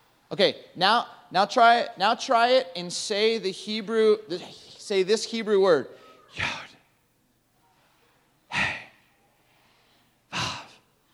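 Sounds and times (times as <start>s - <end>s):
speech: 0.3s - 6.7s
person breathing out during a breathing exercise: 8.5s - 9.0s, 9.9s - 10.8s.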